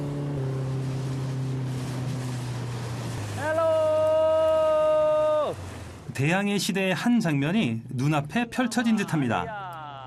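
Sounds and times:
water wash and spray under a moving boat hull: 0:00.0 - 0:06.1
boat engine droning: 0:00.0 - 0:10.0
speech: 0:06.2 - 0:09.6.

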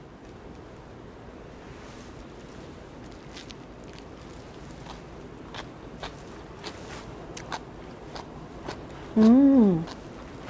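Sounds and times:
person chewing something crunchy: 0:03.0 - 0:10.4
person humming mmm of approval: 0:09.1 - 0:10.0.

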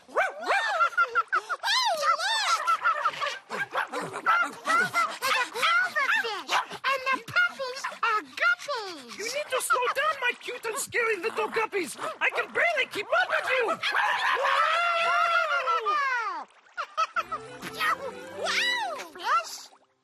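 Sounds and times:
high-pitched dog barks and yips: 0:00.1 - 0:00.8, 0:02.9 - 0:06.8
laughter: 0:00.4 - 0:08.2, 0:09.2 - 0:11.4, 0:12.2 - 0:19.2.

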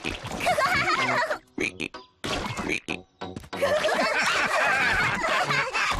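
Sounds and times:
children giggling: 0:00.3 - 0:01.8, 0:03.6 - 0:05.9.

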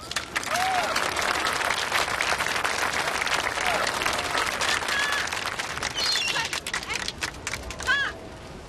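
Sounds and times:
audience applause honoring a woman who received her green card: 0:00.0 - 0:08.1
sharp whistles: 0:05.9 - 0:06.5.

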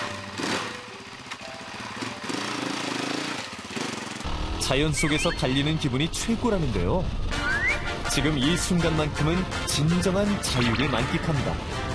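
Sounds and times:
small off-road motorcycle engine revving: 0:00.0 - 0:07.3
speech: 0:04.6 - 0:07.3, 0:08.2 - 0:11.8.

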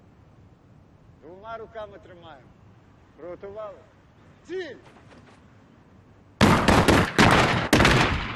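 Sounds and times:
speech: 0:01.2 - 0:02.6, 0:03.2 - 0:05.4
person shouting a command at shooting range training: 0:04.4 - 0:04.8
volley of rifle gunshots at shooting range training: 0:06.4 - 0:08.3.

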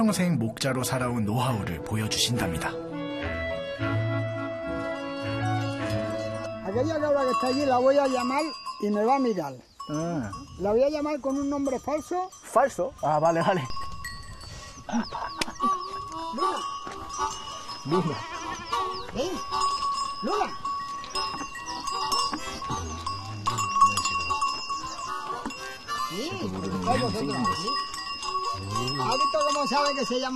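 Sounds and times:
speech: 0:00.0 - 0:04.0, 0:06.8 - 0:13.8, 0:14.9 - 0:15.7, 0:16.3 - 0:20.6, 0:26.9 - 0:27.9, 0:28.8 - 0:30.3
goat bells clinking and ringing: 0:05.2 - 0:30.3
herd of goats bleating: 0:15.6 - 0:29.5.

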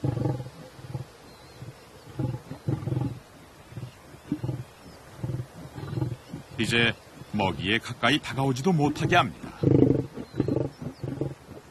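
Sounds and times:
male lion growling at cubs: 0:00.0 - 0:07.6, 0:08.8 - 0:11.6
speech: 0:06.6 - 0:09.9.

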